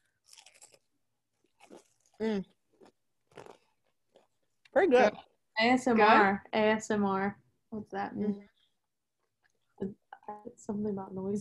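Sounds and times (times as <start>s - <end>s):
chewing cold chicken dipped in ranch and buffalo sauce: 0.0s - 5.3s
speech: 2.2s - 2.6s, 4.8s - 8.5s, 9.8s - 11.3s.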